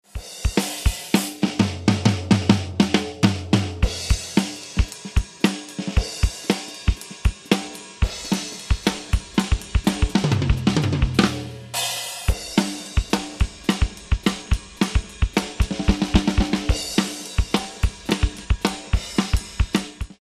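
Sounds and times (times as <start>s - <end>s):
drums with and without reverb: 0.0s - 20.1s.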